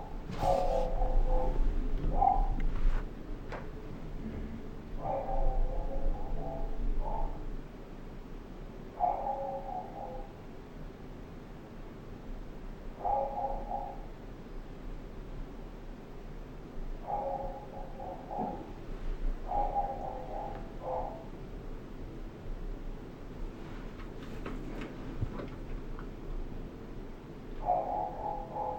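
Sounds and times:
muffled dog barks through a building ventilation system: 0.0 - 2.7, 5.0 - 7.5, 9.0 - 10.4, 13.0 - 14.1, 17.0 - 18.8, 19.4 - 21.4, 27.6 - 28.7
low rumble of ventilation ductwork: 0.0 - 28.7.

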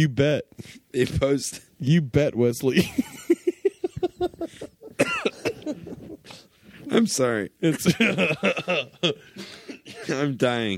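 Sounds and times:
speech: 0.0 - 3.2, 6.9 - 10.7
laughter: 2.8 - 6.5, 7.6 - 10.3
person in a coughing fit: 5.0 - 5.8, 9.3 - 10.3.

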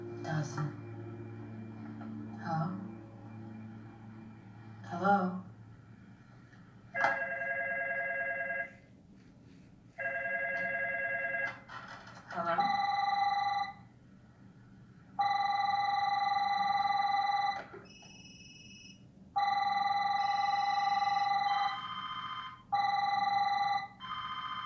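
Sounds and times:
speech: 0.3 - 0.8, 2.4 - 2.9, 4.9 - 5.5
loud electronic telephone ring in an office: 6.9 - 8.8, 10.0 - 11.7, 12.6 - 13.8, 15.2 - 24.6.

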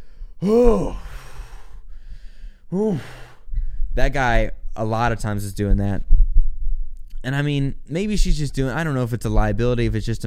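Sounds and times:
person exhaling through the mouth demonstrating the breath: 0.0 - 3.8
speech: 0.4 - 1.0, 2.7 - 3.2, 4.0 - 6.1, 7.2 - 10.2.

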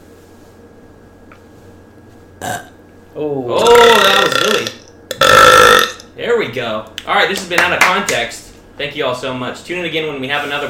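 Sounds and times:
faint room hum: 0.0 - 10.6
burp: 2.4 - 2.8, 3.6 - 6.1
speech: 2.4 - 4.7, 6.5 - 10.6.

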